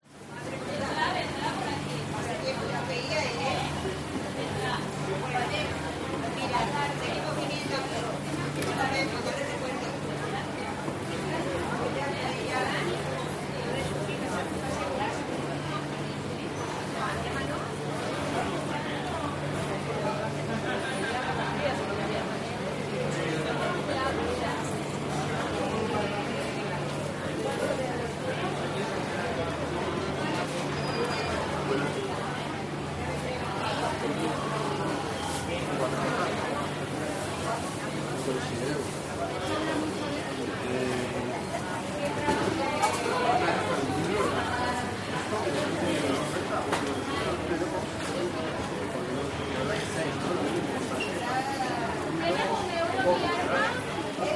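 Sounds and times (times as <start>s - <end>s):
Spanish market crowd of 40 to 50 adults: 0.0s - 54.3s.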